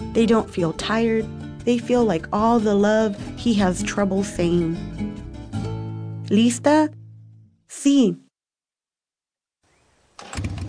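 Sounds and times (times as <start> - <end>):
speech: 0.2 - 5.1, 6.3 - 7.0, 7.8 - 8.2
engine starting and revving: 10.2 - 10.6.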